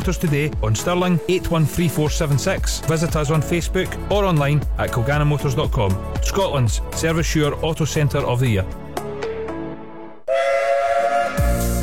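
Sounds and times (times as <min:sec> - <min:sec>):
speech: 0:00.0 - 0:08.8
steam locomotive whistle: 0:10.3 - 0:11.8.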